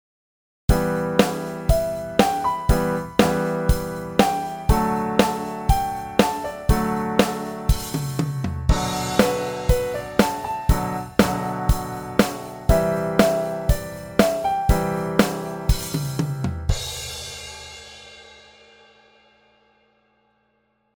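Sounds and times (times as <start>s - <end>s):
rock piano pentatonic soloing: 0.7s - 17.0s.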